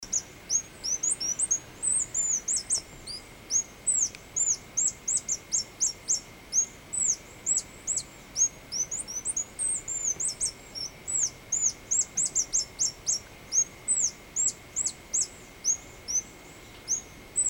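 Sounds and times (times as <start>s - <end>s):
Phaethornis ruber calling: 0.0s - 17.4s.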